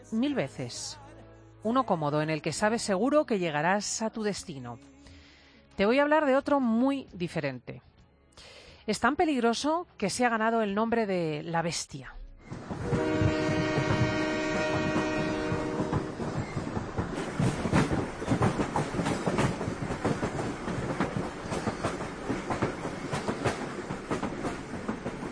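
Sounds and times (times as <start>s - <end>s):
speech: 0.1s - 1.0s, 1.6s - 4.9s, 5.8s - 12.2s
freight train crossing Mexico rumbling and clattering along the rails: 12.4s - 25.3s
freight train horn blast in Mexico: 12.8s - 16.3s.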